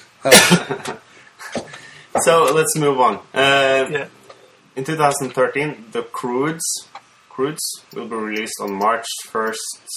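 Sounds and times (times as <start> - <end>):
speech: 0.2 - 1.0, 2.2 - 4.2, 4.8 - 9.9
dog coughing: 0.3 - 0.7.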